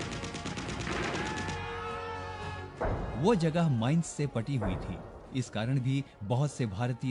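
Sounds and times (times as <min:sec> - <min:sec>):
machine gun fire: 0:00.0 - 0:01.6
speech: 0:03.2 - 0:07.0.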